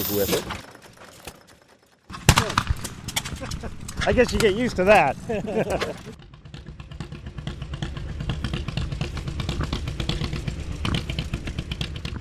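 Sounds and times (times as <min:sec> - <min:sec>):
speech: 0:00.0 - 0:00.7, 0:03.6 - 0:06.2
laughter: 0:03.3 - 0:03.9, 0:05.1 - 0:06.2
large vintage tractor engine revving: 0:05.2 - 0:12.1.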